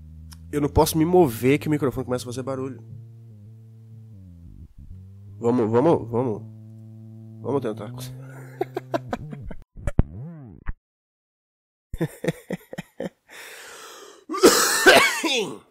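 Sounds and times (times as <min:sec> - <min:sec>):
speech: 0:00.5 - 0:03.1, 0:05.4 - 0:06.5, 0:07.4 - 0:08.7, 0:12.0 - 0:12.6, 0:15.4 - 0:15.6
laughter: 0:08.2 - 0:09.6, 0:12.0 - 0:13.2
smoker's chronic cough: 0:14.3 - 0:15.6
throat clearing: 0:14.3 - 0:15.6.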